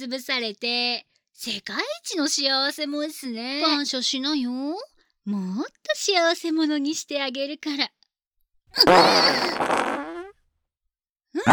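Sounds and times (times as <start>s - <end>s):
speech: 0.0s - 8.0s, 8.7s - 9.8s, 11.3s - 11.5s
long loud fart: 8.8s - 10.4s.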